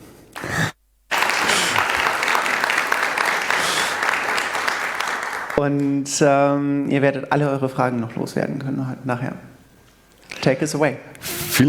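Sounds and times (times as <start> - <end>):
crowd applauding: 0.4 - 5.6
speech: 5.6 - 9.5, 10.4 - 11.6.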